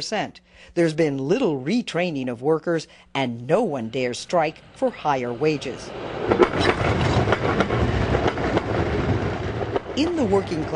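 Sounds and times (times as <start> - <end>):
speech: 0.0 - 7.1, 10.0 - 10.7
tram rumbling on rails: 3.9 - 10.7
tram wheels clacking over track joints: 6.1 - 10.7.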